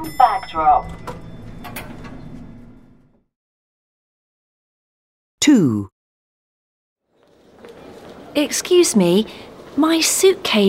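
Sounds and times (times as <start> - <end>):
speech: 0.1 - 1.1, 5.5 - 5.9, 8.4 - 10.6
lift doors sliding open with mechanical rumble and whir: 0.7 - 3.2.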